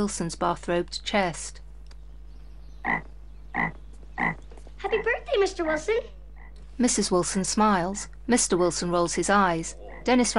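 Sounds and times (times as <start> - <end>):
speech: 0.0 - 1.6, 2.8 - 6.2, 6.8 - 10.3
steady low hum: 0.0 - 10.3
frog croaking: 2.8 - 6.6, 9.4 - 10.3.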